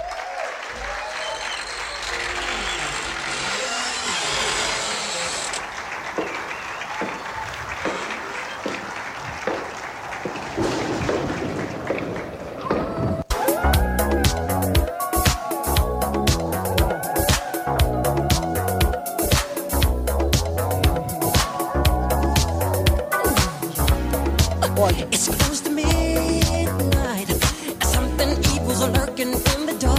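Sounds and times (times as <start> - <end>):
crowd applauding: 0.0 - 26.4
loud rhythmic music with a strong beat: 13.3 - 29.9.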